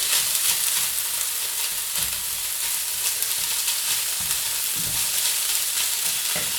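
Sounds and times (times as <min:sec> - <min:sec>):
tofu sizzling in a hot pan: 0:00.0 - 0:06.5.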